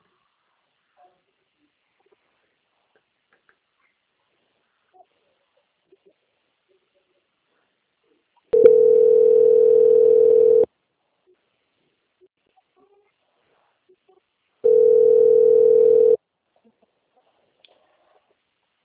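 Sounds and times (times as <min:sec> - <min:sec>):
telephone line tone during a call transfer: 0:08.6 - 0:10.7, 0:14.7 - 0:16.2.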